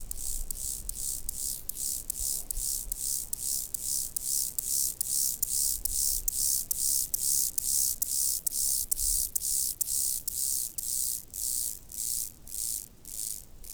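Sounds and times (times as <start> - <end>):
Chortippus mollis chirping: 0.0 - 13.7.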